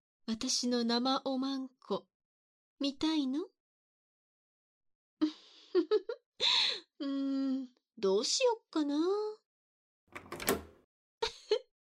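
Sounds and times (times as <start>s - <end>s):
speech: 0.3s - 2.1s, 2.8s - 3.5s, 5.2s - 9.4s
metallic rattle of door handle and lock: 10.1s - 10.8s.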